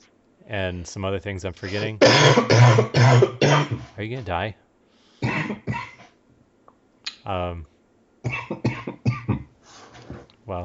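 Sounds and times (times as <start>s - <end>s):
speech: 0.5s - 4.6s, 7.2s - 8.4s
person coughing: 1.6s - 4.0s, 5.2s - 6.1s, 8.3s - 9.5s.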